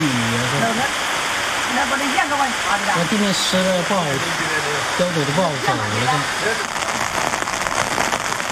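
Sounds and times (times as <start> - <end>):
sudden rain on a work site: 0.0 - 8.5
speech: 1.8 - 6.9.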